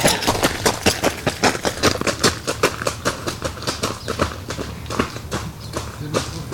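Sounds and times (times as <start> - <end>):
footfalls of people running past: 0.0 - 6.5.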